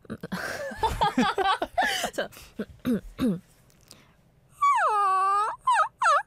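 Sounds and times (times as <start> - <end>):
laughter: 0.4 - 2.3
speech: 1.2 - 1.6
woman imitating a crying Maltese puppy with high nasal whimpers: 4.6 - 6.2.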